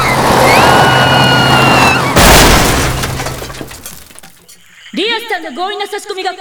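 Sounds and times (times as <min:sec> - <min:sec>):
truck engine roaring on a race course: 0:00.0 - 0:04.1
truck crashing into a tree with shattering debris: 0:00.0 - 0:04.4
speech: 0:05.5 - 0:06.3.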